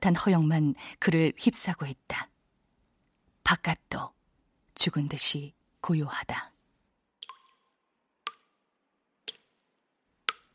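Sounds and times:
speech: 0.0 - 2.3, 3.5 - 4.2, 4.8 - 6.5
water dripping from a tap: 7.2 - 10.5.

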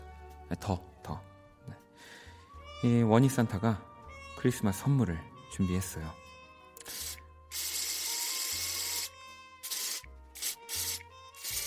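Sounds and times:
speech: 0.5 - 1.3, 2.8 - 6.2
aerosol artificial snow spray hissing: 6.8 - 11.6.

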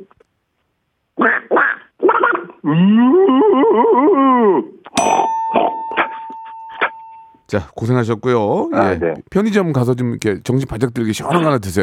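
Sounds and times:
human voice imitating ducks fighting during a voice-mimicry contest: 1.2 - 4.7
speech: 2.6 - 5.7, 7.5 - 11.8.

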